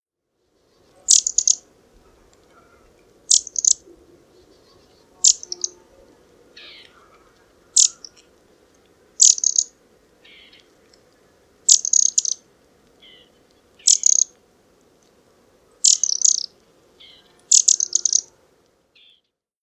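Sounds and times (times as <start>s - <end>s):
Eurasian wren (Troglodytes troglodytes) calling: 0.7s - 8.3s, 9.2s - 10.7s, 11.6s - 14.4s, 15.8s - 18.4s, 19.0s - 19.2s.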